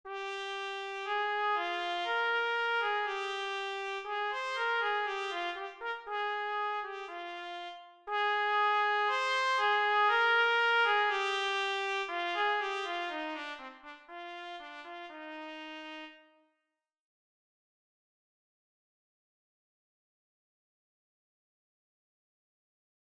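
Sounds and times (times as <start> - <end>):
trumpet playing an etude: 0.1 - 16.5.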